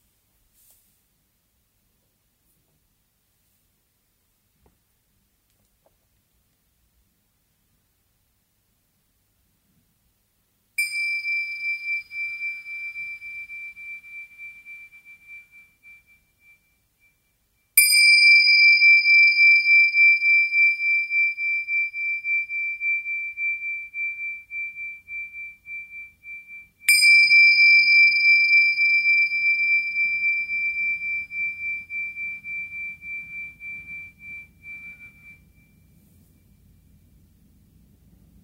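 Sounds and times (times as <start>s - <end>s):
meditation bell ringing: 10.8s - 37.4s.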